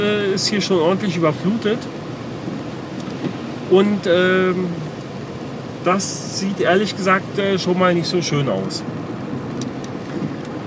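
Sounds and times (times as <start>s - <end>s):
speech: 0.0s - 2.6s, 3.7s - 4.8s, 5.8s - 9.0s
steady rain falling outdoors: 0.0s - 10.6s.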